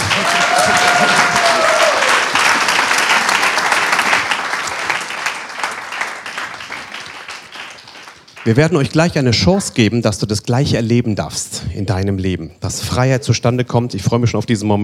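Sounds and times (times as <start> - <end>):
congregation applauding: 0.0 - 8.7
speech: 8.4 - 14.8.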